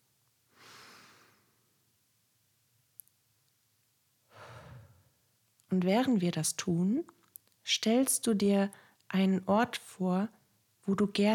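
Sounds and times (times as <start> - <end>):
slow deep inhale and long exhale in a guided breathing exercise: 0.5 - 1.7, 4.3 - 5.2
speech: 5.7 - 11.3.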